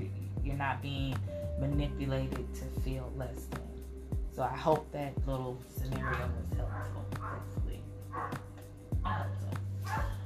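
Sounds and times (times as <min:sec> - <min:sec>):
steady low hum: 0:00.0 - 0:10.2
speech: 0:00.5 - 0:03.6, 0:04.4 - 0:08.5
dogs barking outside at a dog park: 0:05.9 - 0:08.6, 0:09.8 - 0:10.2.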